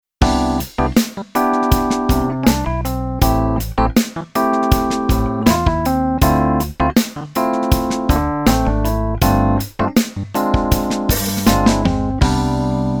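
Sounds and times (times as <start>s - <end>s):
keyboard piano pops: 0.2s - 12.8s.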